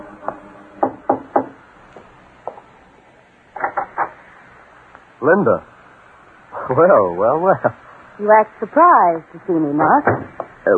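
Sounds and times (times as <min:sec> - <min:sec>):
woman knocking on an artist's studio door in Greenwich Village: 0:00.8 - 0:01.6, 0:09.8 - 0:10.6
speech: 0:05.2 - 0:05.7, 0:06.7 - 0:10.7.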